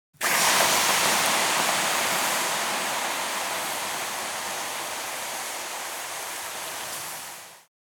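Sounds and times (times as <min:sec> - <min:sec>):
fire extinguisher spraying: 0:00.2 - 0:07.7.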